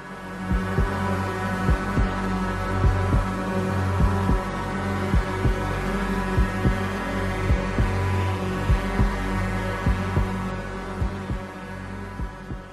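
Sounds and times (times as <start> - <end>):
dark synth score from a 1980 horror film soundtrack: 0.0 - 12.7
sustained droning synth tones: 0.0 - 12.7
throbbing heartbeat pulse in a synth horror soundtrack: 0.5 - 1.0, 1.7 - 2.1, 2.8 - 3.3, 4.0 - 4.4, 5.1 - 5.6, 6.4 - 6.8, 7.5 - 8.0, 8.7 - 9.2, 9.8 - 10.3, 11.0 - 11.5, 12.2 - 12.7.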